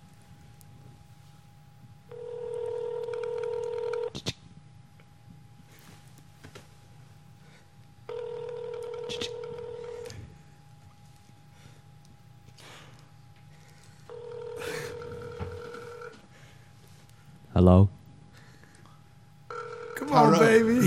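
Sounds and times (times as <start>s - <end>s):
low hum: 0.0s - 20.8s
telephone ringing tone: 2.1s - 4.1s, 8.1s - 10.2s, 14.1s - 16.2s, 19.5s - 20.8s
speech: 17.6s - 17.9s.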